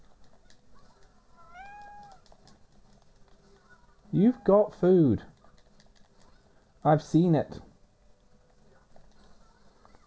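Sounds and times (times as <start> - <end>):
low continuous hum: 0.0 - 10.0
cat meowing: 1.4 - 2.3
speech: 4.1 - 5.3, 6.8 - 7.7.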